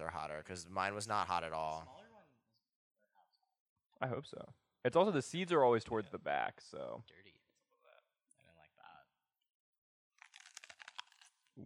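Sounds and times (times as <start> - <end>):
speech: 0.0 - 2.1, 4.0 - 7.4
crunch of someone biting into a raw pepper: 10.2 - 11.6.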